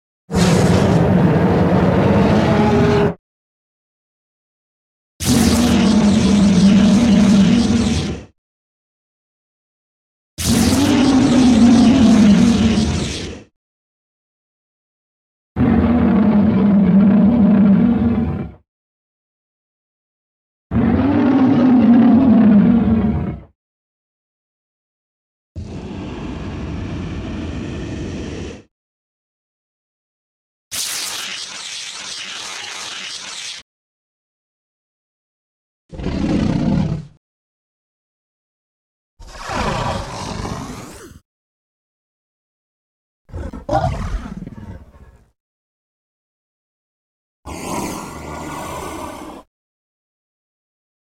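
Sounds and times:
werewolf making scary sounds: 0.3 - 3.2, 5.2 - 8.3, 10.4 - 13.5, 15.6 - 18.6, 20.7 - 23.5, 25.6 - 28.7, 35.9 - 37.2, 39.2 - 41.2, 43.3 - 45.4, 47.5 - 49.5.

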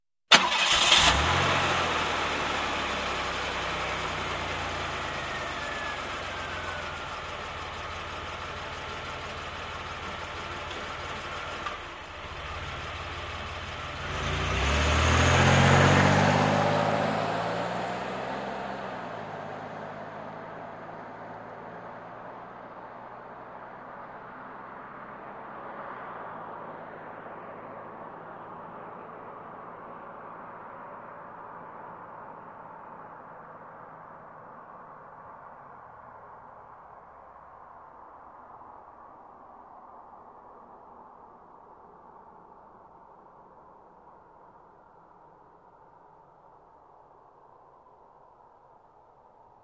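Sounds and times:
car starting: 0.3 - 21.8
car driving away: 0.3 - 32.4.

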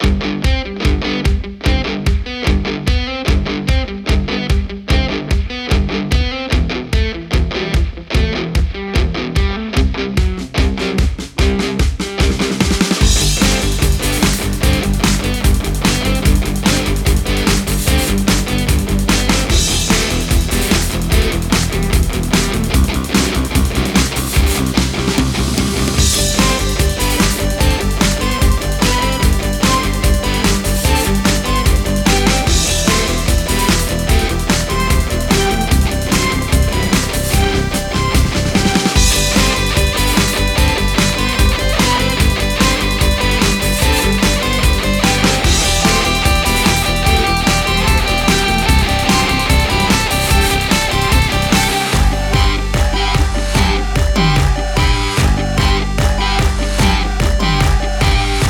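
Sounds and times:
corporate rock music: 0.0 - 58.4.

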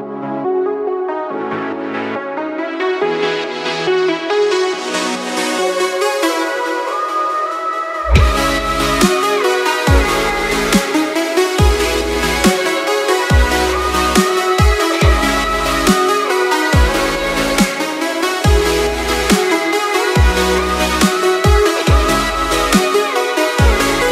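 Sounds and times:
chillstep music: 0.2 - 24.1.

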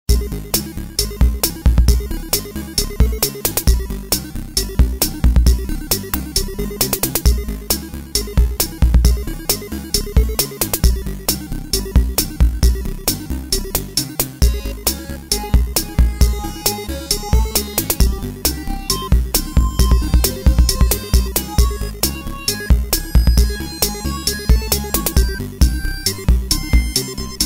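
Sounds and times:
8-bit music: 0.1 - 27.4.

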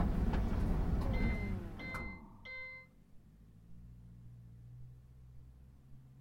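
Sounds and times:
dryer end-of-cycle signal: 1.0 - 2.9.

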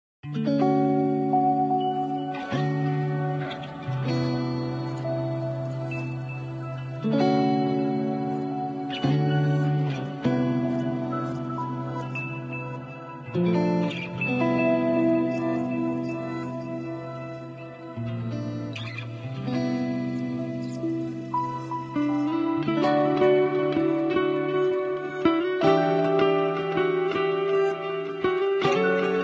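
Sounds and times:
guitar playing: 0.2 - 29.2.

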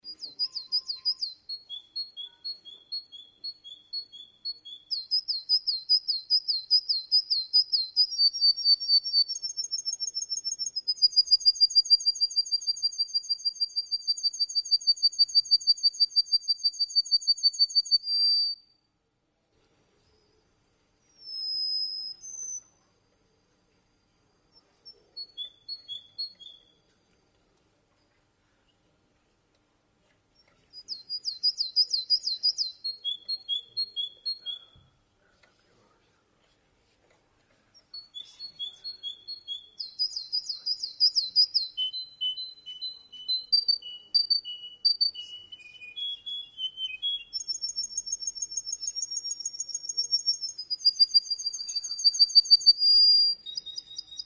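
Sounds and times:
canary singing: 0.0 - 18.7, 21.1 - 22.8, 24.5 - 26.8, 30.8 - 34.8, 37.9 - 54.2.

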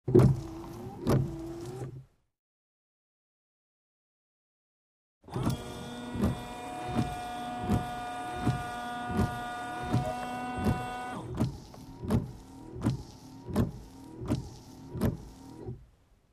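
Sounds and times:
car windshield washer spraying water onto wipers: 0.1 - 1.9, 5.3 - 15.8.

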